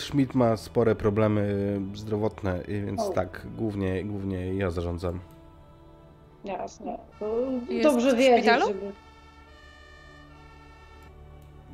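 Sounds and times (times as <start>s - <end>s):
speech: 0.1s - 5.4s, 6.4s - 9.1s
several fire engine sirens blaring outside: 7.6s - 11.1s.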